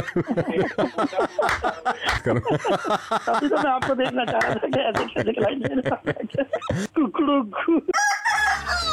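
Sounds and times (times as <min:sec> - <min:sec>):
laughter: 0:00.0 - 0:08.0
rooster crowing sound effect: 0:07.9 - 0:08.9.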